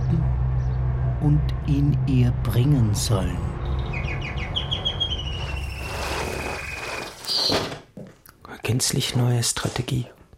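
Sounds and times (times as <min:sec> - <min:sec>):
low rumbling background: 0:00.0 - 0:05.9
speech: 0:01.2 - 0:03.6, 0:08.7 - 0:10.2
canary chirping: 0:03.6 - 0:07.6.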